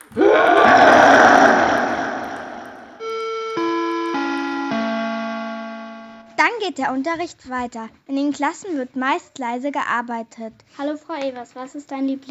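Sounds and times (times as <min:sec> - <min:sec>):
dinosaur roaring at a school: 0:00.1 - 0:03.0
electronic-sounding tones stepping lower in pitch: 0:03.0 - 0:06.4
speech: 0:06.7 - 0:12.2.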